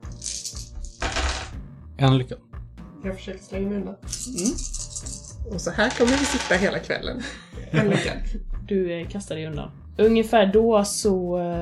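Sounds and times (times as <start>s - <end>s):
handful of dice clattering on a hard surface: 0.0s - 1.5s, 4.1s - 6.7s
speech: 2.0s - 11.6s
laughter: 7.1s - 8.4s.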